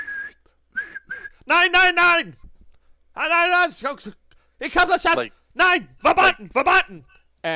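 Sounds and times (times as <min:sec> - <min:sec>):
person imitating police whistles: 0:00.0 - 0:01.4
speech: 0:01.5 - 0:02.4, 0:03.2 - 0:07.5.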